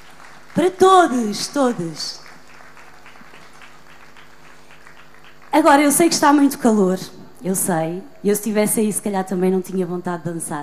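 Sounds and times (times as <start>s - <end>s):
audience applause at a live concert: 0.0s - 5.7s
speech: 0.6s - 2.2s, 5.6s - 10.6s.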